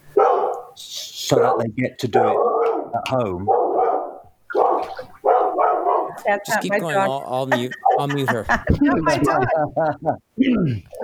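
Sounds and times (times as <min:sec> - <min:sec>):
dog barking during an online call: 0:00.2 - 0:06.3, 0:07.8 - 0:08.1
speech: 0:00.8 - 0:03.7, 0:06.2 - 0:11.0
laughter: 0:06.4 - 0:10.2.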